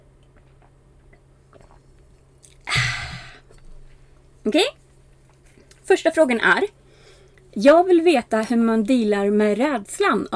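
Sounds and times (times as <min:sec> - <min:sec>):
person sipping and swallowing wine: 0:00.2 - 0:03.7
speech: 0:04.4 - 0:04.8, 0:05.9 - 0:06.8, 0:07.6 - 0:10.3.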